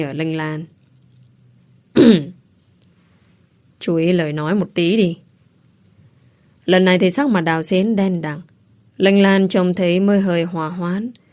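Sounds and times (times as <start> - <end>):
speech: 0.0 - 0.8, 3.8 - 5.2, 6.7 - 11.2
faint low hum: 0.0 - 11.3
man clearing his throat: 2.0 - 2.4.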